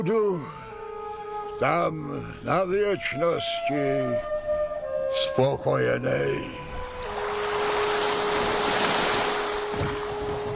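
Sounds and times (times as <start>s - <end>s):
speech: 0.0s - 0.6s, 1.6s - 4.4s, 5.1s - 6.6s
wind: 0.0s - 10.5s
constant rush of ocean waves: 6.6s - 10.5s
man rowing a boat through rough ocean water at night: 6.6s - 10.5s
faint low splash: 6.7s - 10.5s.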